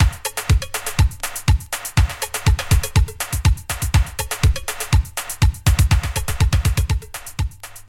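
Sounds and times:
80s breakbeat drum loop with kick tuned to B: 0.0s - 7.8s.

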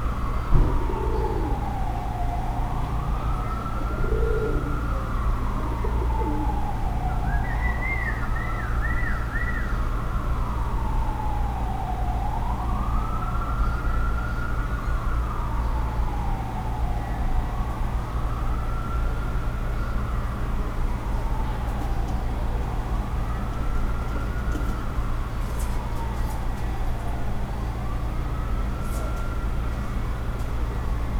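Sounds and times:
car siren: 0.0s - 31.1s
city ringdove cooing: 0.6s - 1.9s, 3.8s - 6.7s.

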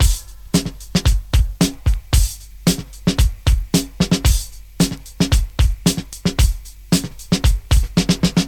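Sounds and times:
113 bpm drum loop in F: 0.0s - 8.4s.

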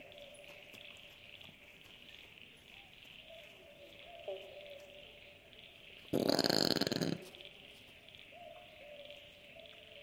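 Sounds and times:
brush-tailed possum giving a harsh, pulsed grunt in the woods: 6.1s - 7.4s.

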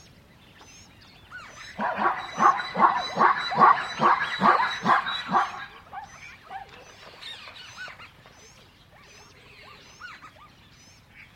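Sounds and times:
dog barking: 1.8s - 6.7s.

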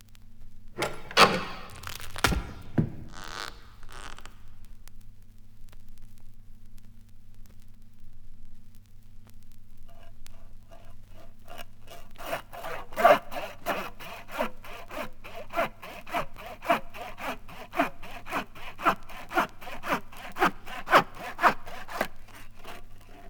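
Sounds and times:
sawing: 0.8s - 4.2s, 10.7s - 23.2s.

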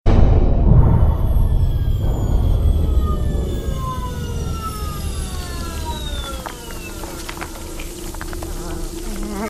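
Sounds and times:
big engine powering down: 0.9s - 8.5s.

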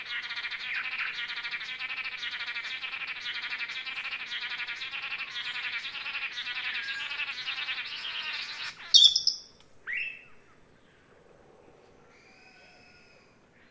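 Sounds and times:
blue-backed manakins giving rapid nasal buzzy calls: 0.0s - 10.2s.

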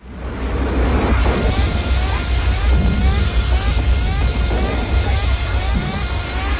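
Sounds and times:
alarm blaring furiously: 1.2s - 6.5s.

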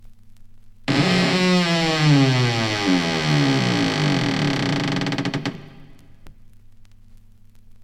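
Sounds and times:
creaky door closing: 0.9s - 6.1s.

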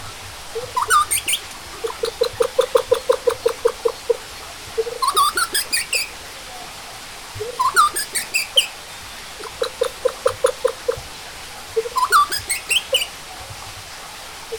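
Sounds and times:
male and female capercaillie chirping in natural habitat: 0.6s - 4.2s, 4.8s - 6.1s, 7.4s - 11.1s, 11.8s - 13.1s.

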